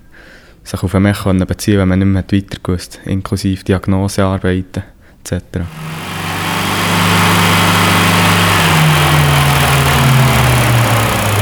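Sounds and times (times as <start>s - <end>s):
speech: 0.7s - 6.2s
car engine revving to recharge the battery through the alternator: 5.7s - 11.4s.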